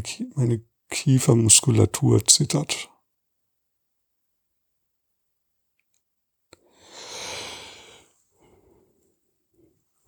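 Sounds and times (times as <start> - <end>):
speech: 0.0 - 2.9
person relaxing taking a deep airy breath: 6.6 - 8.9.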